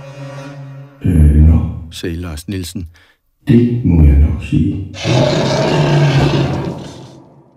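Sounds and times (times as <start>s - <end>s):
speech: 1.0s - 6.6s
bear roaring: 5.0s - 7.5s.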